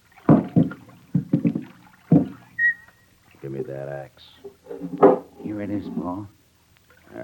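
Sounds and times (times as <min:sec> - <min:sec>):
oars dipping and pulling through river water: 0:00.0 - 0:03.6
soft gurgling of river water: 0:00.0 - 0:07.2
speech: 0:03.5 - 0:06.4.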